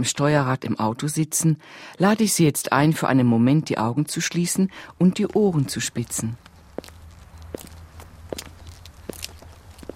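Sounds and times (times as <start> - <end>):
speech: 0.0 - 6.5
soft footsteps placed slowly and carefully on the ground: 5.0 - 9.9.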